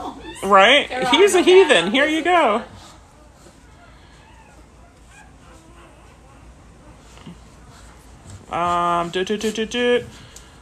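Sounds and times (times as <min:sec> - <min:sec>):
speech: 0:00.4 - 0:02.7, 0:08.5 - 0:10.2
golden retriever puppy whimpering and yipping: 0:03.8 - 0:07.2.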